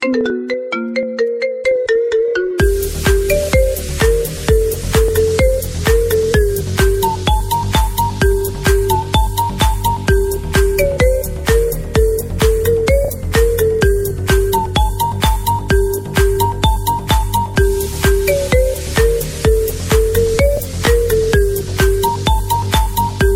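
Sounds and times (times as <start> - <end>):
marimba remix ringtone melody: 0.0 - 23.3.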